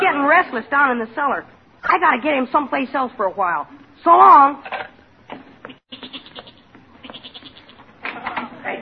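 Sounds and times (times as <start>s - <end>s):
speech: 0.4s - 5.4s
goat bleating: 5.6s - 7.9s.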